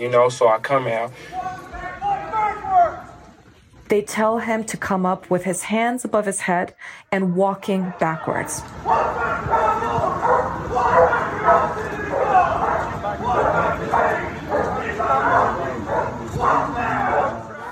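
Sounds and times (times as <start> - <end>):
speech: 0.0 - 1.5, 3.9 - 9.7
dog barking furiously with yips: 8.8 - 17.7.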